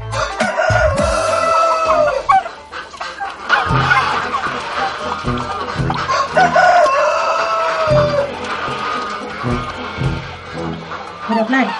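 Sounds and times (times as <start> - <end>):
flock of hens clucking: 0.0 - 11.7
rooster crowing: 0.1 - 2.5, 5.2 - 9.6
steady low thumping beat: 0.4 - 2.3, 3.6 - 7.0, 7.8 - 11.0
speech: 11.5 - 11.7.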